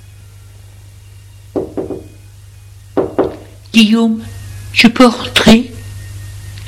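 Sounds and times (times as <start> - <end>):
low steady hum: 0.0 - 6.6
knocking on a bedroom door: 1.6 - 2.2, 3.0 - 3.4
speech: 3.7 - 5.7.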